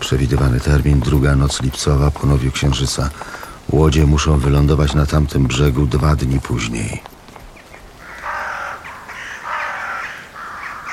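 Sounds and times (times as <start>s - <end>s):
speech: 0.1s - 7.1s
flock of crows cawing flying over a highway: 7.6s - 10.9s.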